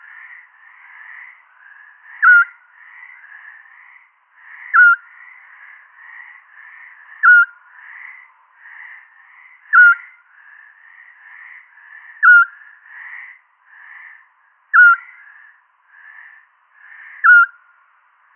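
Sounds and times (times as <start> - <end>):
soft chirping: 2.1 - 2.6, 4.7 - 5.0, 7.2 - 7.6, 9.7 - 10.2, 14.7 - 15.2, 17.0 - 17.6
Eurasian scops owl hooting: 2.2 - 2.6, 4.7 - 5.0, 7.2 - 7.6, 9.7 - 10.2, 12.2 - 12.6, 14.8 - 15.2, 16.9 - 17.6.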